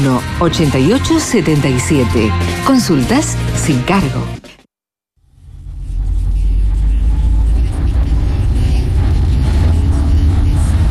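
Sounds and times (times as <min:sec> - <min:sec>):
speech: 0:00.0 - 0:04.4
car engine rumble heard from inside a car while driving: 0:05.2 - 0:10.8.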